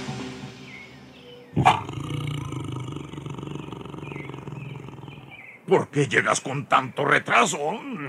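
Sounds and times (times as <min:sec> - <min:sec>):
tiger roaring: 0:01.5 - 0:05.5
speech: 0:05.7 - 0:08.0.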